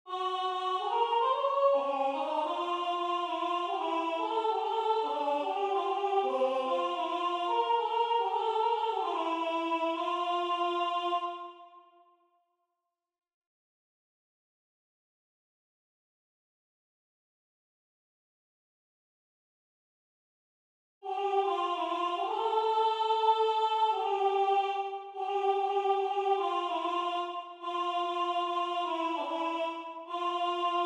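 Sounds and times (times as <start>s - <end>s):
alto voice singing: 0.1s - 11.8s, 21.0s - 30.8s.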